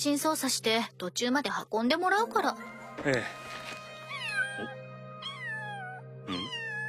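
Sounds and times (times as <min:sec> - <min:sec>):
speech: 0:00.0 - 0:03.5
cat meowing: 0:04.1 - 0:06.8.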